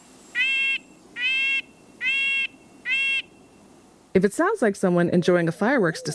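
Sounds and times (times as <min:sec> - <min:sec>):
background hiss: 0:00.0 - 0:06.1
Red-breasted Nuthatch nasal tinny honking calls: 0:00.4 - 0:03.7
speech: 0:04.2 - 0:06.1.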